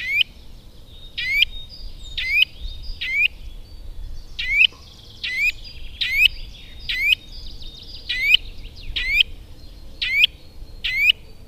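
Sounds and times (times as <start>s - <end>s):
Eurasian nuthatch calling: 0.0s - 11.4s.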